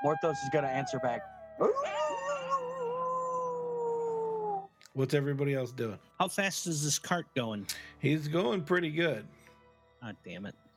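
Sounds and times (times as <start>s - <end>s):
speech: 0.0s - 2.1s, 5.0s - 9.4s, 10.0s - 10.6s
person imitating an animal howl: 0.0s - 4.7s.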